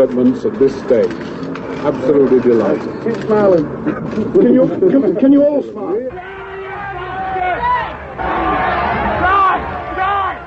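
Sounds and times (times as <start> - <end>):
speech: 0.0 - 6.3
large crowd roaring and howling outside a magistrate's court: 6.1 - 10.4
people yelling above the crowd: 6.1 - 10.4.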